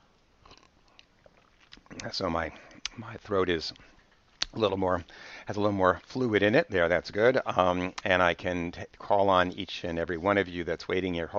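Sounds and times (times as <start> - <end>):
soft swallowing and mouth clicks: 0.4 - 3.0
sipping tea: 0.4 - 5.4
speech: 2.0 - 11.3.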